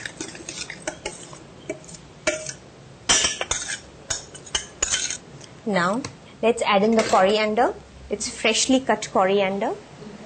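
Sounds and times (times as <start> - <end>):
spoon stirring chutney in a bowl: 0.0 - 5.2
speech: 5.7 - 9.9.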